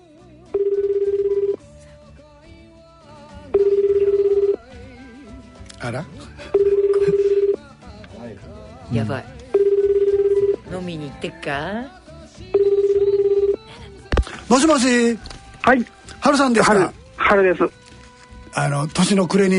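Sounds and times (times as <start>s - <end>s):
phone ringback tone: 0.5s - 1.6s, 3.5s - 4.8s, 6.5s - 7.6s, 9.5s - 10.7s, 12.5s - 13.7s
speech: 10.9s - 12.0s, 14.5s - 17.8s, 18.6s - 19.5s.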